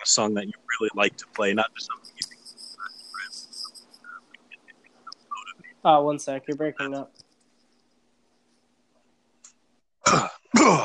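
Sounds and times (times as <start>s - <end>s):
speech: 0.0s - 2.1s, 5.8s - 7.2s, 10.1s - 10.8s
single short human cough: 10.0s - 10.8s.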